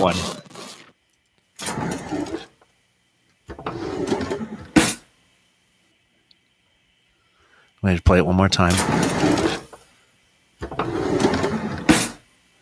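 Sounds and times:
speech: 0:00.0 - 0:00.4, 0:07.8 - 0:09.6
kitchen utensil drawer opening and closing: 0:01.6 - 0:02.6, 0:03.5 - 0:05.0, 0:08.7 - 0:09.8, 0:10.6 - 0:12.2.

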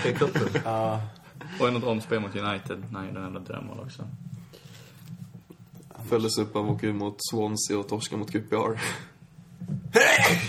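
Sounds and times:
speech: 0:00.0 - 0:04.3, 0:06.0 - 0:10.4
sneeze: 0:10.0 - 0:10.4.

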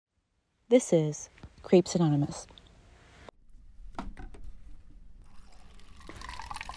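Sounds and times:
speech: 0:00.7 - 0:02.6
lukewarm water pouring from a water cooler into a styrofoam cup: 0:05.2 - 0:06.7.

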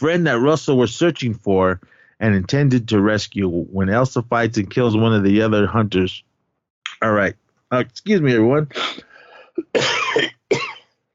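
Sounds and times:
speech: 0:00.0 - 0:06.3, 0:07.0 - 0:10.3
person clearing throat: 0:08.7 - 0:10.9.

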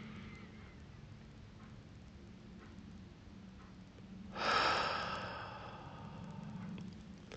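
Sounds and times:
deep slow breath drawn in during a guided breathing exercise: 0:04.3 - 0:06.8.

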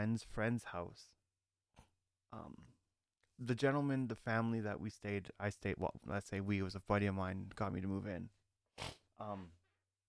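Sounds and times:
speech: 0:00.0 - 0:01.2, 0:02.3 - 0:02.8, 0:03.4 - 0:09.6
person with a cold sniffing through the nose: 0:08.8 - 0:09.4.

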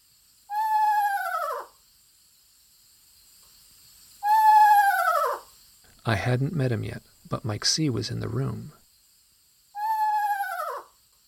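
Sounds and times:
eastern screech owl whinny call: 0:00.5 - 0:01.8, 0:04.2 - 0:05.5, 0:09.7 - 0:11.0
speech: 0:06.0 - 0:08.8.

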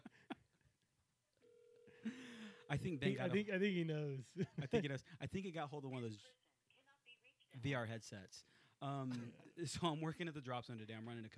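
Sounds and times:
steady electronic telephone tone: 0:01.4 - 0:03.2
speech: 0:02.0 - 0:06.4, 0:07.5 - 0:11.3.

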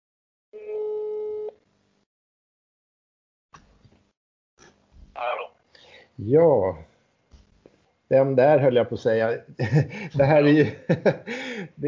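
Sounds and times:
steady electronic phone tone over a speakerphone: 0:00.6 - 0:01.6
faint voice coming through the phone call: 0:05.2 - 0:05.5
speech: 0:06.2 - 0:06.9, 0:08.1 - 0:11.8
laughter: 0:09.6 - 0:11.8.

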